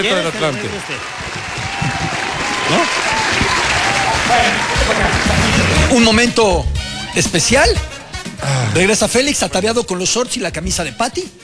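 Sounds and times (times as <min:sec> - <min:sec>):
speech: 0:00.0 - 0:02.0, 0:02.7 - 0:03.2, 0:04.3 - 0:11.4
crowd applauding: 0:00.0 - 0:11.4
laughter: 0:00.0 - 0:11.4
voices calling out faintly: 0:00.0 - 0:11.4.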